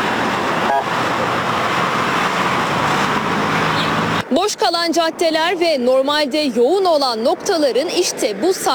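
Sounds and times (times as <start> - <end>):
official motorcade convoy passing along a cleared route in Ankara Turkey: 0.0 - 8.7
speech: 4.9 - 8.7.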